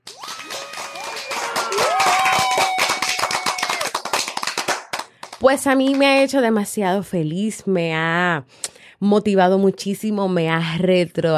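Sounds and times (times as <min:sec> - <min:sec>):
crowd cheering: 0:00.0 - 0:04.9
crowd applauding: 0:00.0 - 0:06.0
speech: 0:05.4 - 0:11.3.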